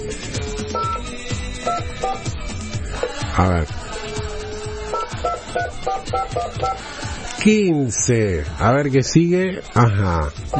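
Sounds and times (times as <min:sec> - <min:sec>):
continuous telephone dial tone: 0:00.0 - 0:02.3, 0:04.0 - 0:06.9
telephone keypad tones dialed on a landline: 0:00.7 - 0:01.0, 0:01.7 - 0:02.2, 0:04.9 - 0:06.8
speech: 0:03.4 - 0:03.8, 0:05.5 - 0:10.5.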